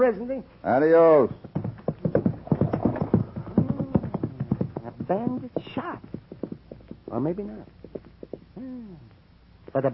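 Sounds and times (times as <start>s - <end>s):
speech: 0.0s - 1.4s, 5.1s - 6.1s, 7.1s - 7.8s, 8.6s - 9.1s, 9.7s - 9.9s
horse hooves clip-clopping: 1.2s - 8.6s.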